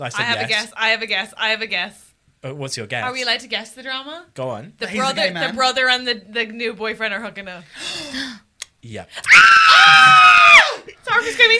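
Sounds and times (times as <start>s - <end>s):
speech: 0.0s - 11.5s
person screaming in shock: 9.3s - 10.8s.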